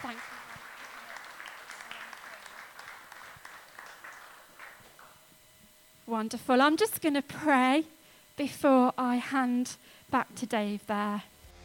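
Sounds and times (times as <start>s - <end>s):
audience applauding: 0.0s - 5.2s
speech: 6.1s - 11.3s.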